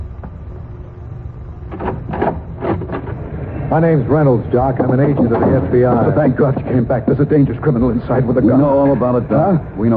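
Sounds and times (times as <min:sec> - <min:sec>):
door scraping and rattling as it is opened: 0:01.7 - 0:06.6
speech: 0:03.7 - 0:09.9.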